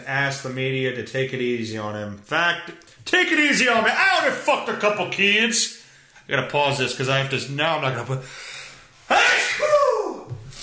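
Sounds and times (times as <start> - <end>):
speech: 0.0 - 8.5
loud sneeze: 9.1 - 10.2.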